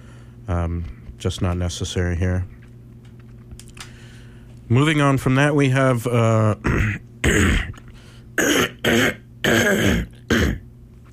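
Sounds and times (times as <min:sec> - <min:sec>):
speech: 0:00.5 - 0:02.6, 0:04.7 - 0:07.8, 0:08.4 - 0:10.0
person coughing harshly: 0:06.6 - 0:07.8, 0:08.4 - 0:10.7.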